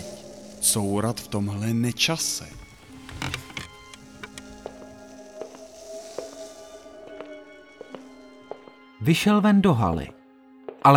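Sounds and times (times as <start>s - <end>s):
speech: 0.6s - 2.6s, 9.0s - 10.2s
door creaking slowly with groans and scrapes: 2.5s - 5.0s.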